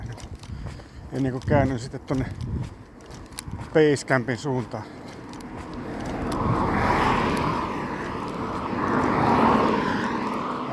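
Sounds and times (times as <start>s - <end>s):
vehicles passing on a paved road: 0.0s - 10.7s
speech: 1.1s - 2.8s, 3.7s - 5.0s.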